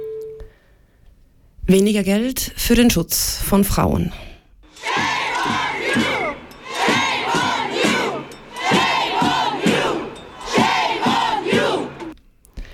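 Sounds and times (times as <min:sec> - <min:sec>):
speech: 0:01.7 - 0:04.3
hundreds of people chanting in unison at a street demonstration: 0:04.7 - 0:12.2.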